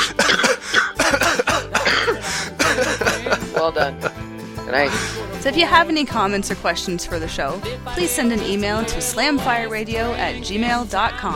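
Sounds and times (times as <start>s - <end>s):
loud fit of harsh coughing: 0.0s - 4.2s
laughter: 0.0s - 5.4s
speech: 3.6s - 11.3s.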